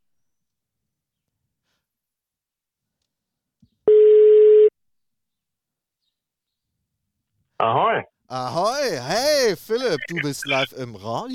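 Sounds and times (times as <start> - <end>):
telephone ringback tone on an outgoing call: 3.9 - 4.7
speech: 7.6 - 11.3
laughter: 8.3 - 11.3.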